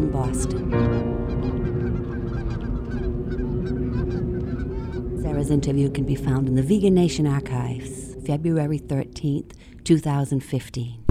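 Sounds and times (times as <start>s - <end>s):
speech: 0.0s - 0.9s, 5.4s - 11.0s
flock of wild geese honking: 0.0s - 8.7s.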